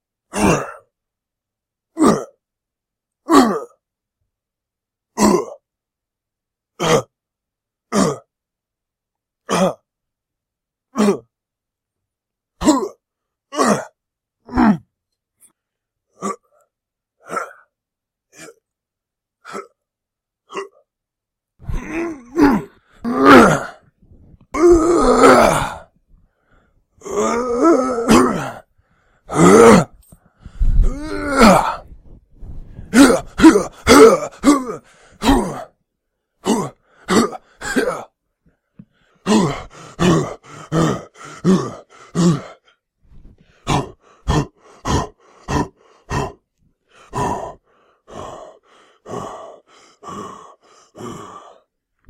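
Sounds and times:
man grunting: 0:00.3 - 0:00.9, 0:02.0 - 0:02.4, 0:03.3 - 0:03.8, 0:05.2 - 0:05.6, 0:06.8 - 0:07.1, 0:09.5 - 0:09.8, 0:10.9 - 0:11.3, 0:12.6 - 0:14.9, 0:21.6 - 0:23.8, 0:24.5 - 0:25.9, 0:27.0 - 0:28.7, 0:29.3 - 0:30.0, 0:30.8 - 0:32.0, 0:32.9 - 0:35.7, 0:36.4 - 0:38.1, 0:39.2 - 0:42.6, 0:43.6 - 0:46.4, 0:47.1 - 0:51.6.

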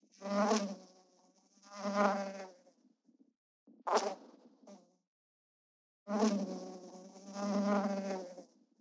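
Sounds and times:
fly buzzing: 0:00.2 - 0:02.6, 0:06.1 - 0:08.5.

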